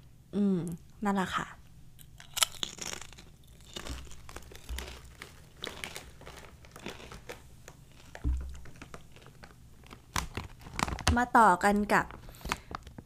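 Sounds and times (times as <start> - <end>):
speech: 0.3 - 1.6, 11.2 - 12.2
potato chips being chewed: 2.0 - 11.2.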